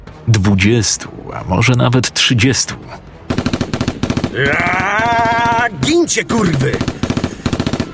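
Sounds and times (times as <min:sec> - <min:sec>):
speech: 0:00.2 - 0:03.1, 0:04.3 - 0:07.0
bursts of rapid rifle fire: 0:03.3 - 0:04.8, 0:06.7 - 0:07.9
sustained wavering high-pitched wail: 0:04.4 - 0:05.7.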